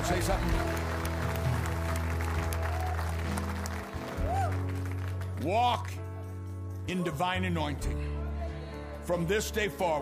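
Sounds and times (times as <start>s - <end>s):
crowd clapping and applauding: 0.0s - 6.0s
speech: 0.1s - 0.8s, 5.4s - 6.0s, 6.9s - 8.2s, 9.1s - 10.0s.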